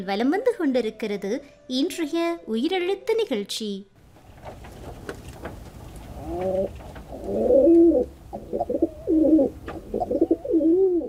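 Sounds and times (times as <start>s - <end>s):
speech: 0.0s - 4.6s, 6.3s - 8.8s
pigeon cooing in low throaty rolling calls: 6.1s - 11.0s.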